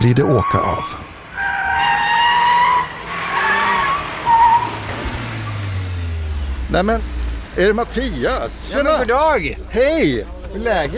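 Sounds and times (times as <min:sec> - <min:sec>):
speech: 0:00.0 - 0:01.0, 0:06.7 - 0:10.9
Cupra Formentor sports car skidding with tires squealing: 0:00.0 - 0:07.5.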